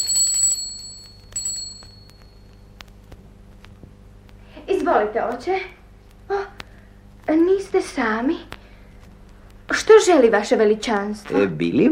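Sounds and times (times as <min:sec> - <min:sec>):
small hand bell ringing to summon someone: 0:00.0 - 0:02.5
speech: 0:04.9 - 0:06.4, 0:07.3 - 0:08.5, 0:09.9 - 0:11.9.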